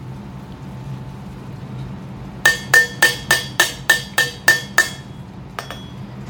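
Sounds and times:
page-turn cue of bright ringing metallic taps: 0:02.5 - 0:06.0.

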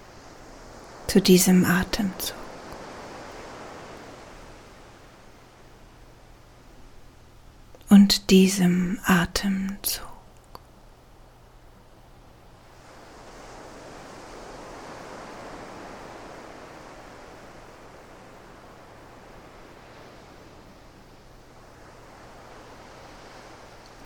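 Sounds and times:
ocean surf waves: 0:00.0 - 0:24.0
speech: 0:01.1 - 0:02.4, 0:08.0 - 0:10.1.

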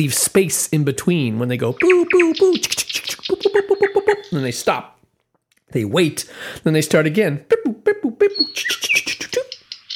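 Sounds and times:
speech: 0:00.0 - 0:05.0, 0:05.7 - 0:07.8, 0:08.5 - 0:08.8
nightingale singing a short varied phrase: 0:01.6 - 0:04.6, 0:08.2 - 0:09.9.

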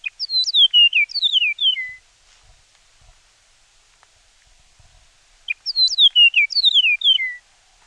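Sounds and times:
Chihuahuan meadowlark whistled song: 0:00.0 - 0:02.1, 0:05.4 - 0:07.5.

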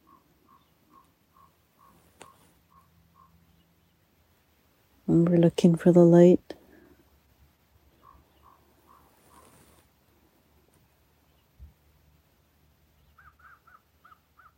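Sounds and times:
crows cawing while harassing an eagle: 0:00.0 - 0:03.4, 0:08.0 - 0:09.5, 0:13.2 - 0:14.5
low steady outdoor rumble: 0:00.0 - 0:14.5
speech: 0:05.1 - 0:06.5.

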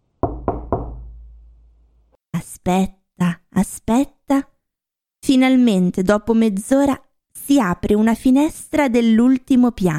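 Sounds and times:
iron door knocker knocks: 0:00.2 - 0:01.3
speech: 0:02.4 - 0:04.5, 0:05.3 - 0:09.9.

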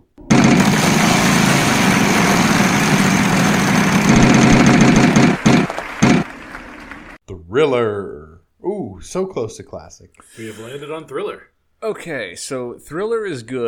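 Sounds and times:
prize wheel being spun: 0:00.3 - 0:06.3
speech: 0:07.6 - 0:08.3, 0:08.9 - 0:13.6.

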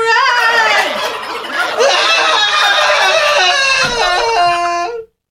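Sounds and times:
laughter: 0:00.1 - 0:05.0
turkey gobbling: 0:00.4 - 0:04.1.

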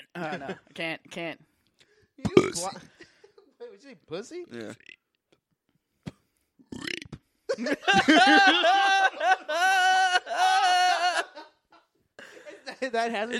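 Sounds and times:
laughter: 0:00.0 - 0:00.8, 0:07.5 - 0:13.3
speech: 0:00.2 - 0:01.5, 0:02.2 - 0:03.1, 0:03.7 - 0:04.9, 0:07.6 - 0:10.8, 0:12.8 - 0:13.3
long croaky burp stretched into a drawn-out voiced word: 0:02.4 - 0:02.8, 0:04.6 - 0:05.1, 0:06.6 - 0:07.2.

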